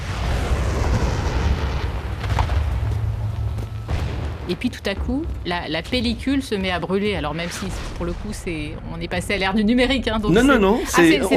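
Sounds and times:
bombs exploding in the distance over Beirut: 0:00.0 - 0:10.2
faint crackles: 0:00.1 - 0:04.5
speech: 0:04.5 - 0:11.3.

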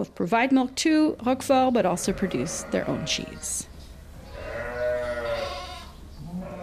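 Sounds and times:
speech: 0:00.0 - 0:03.7
livestock noise: 0:01.6 - 0:06.6
sheep bleating in a reverberant barn on a dairy sheep farm: 0:02.0 - 0:03.6, 0:04.2 - 0:06.6.

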